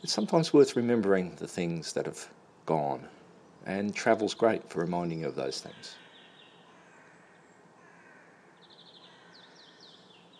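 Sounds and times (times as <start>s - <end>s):
birds chirping outdoors: 0.0s - 10.3s
speech: 0.1s - 6.0s
harsh caws: 6.0s - 10.1s.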